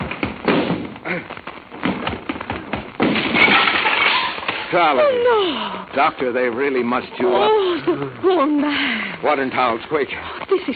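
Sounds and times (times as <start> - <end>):
door crashed down with a splintering crash: 1.8 - 4.8
speech: 4.7 - 10.7.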